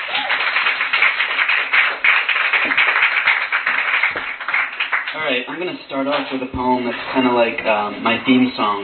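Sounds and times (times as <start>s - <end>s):
audience applause: 0.0s - 5.7s
speech: 5.2s - 8.8s.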